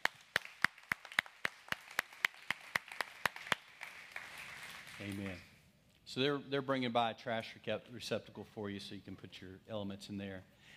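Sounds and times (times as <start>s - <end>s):
audience clapping in a brisk steady rhythm: 0.0s - 5.6s
speech: 5.0s - 5.5s, 6.1s - 10.7s.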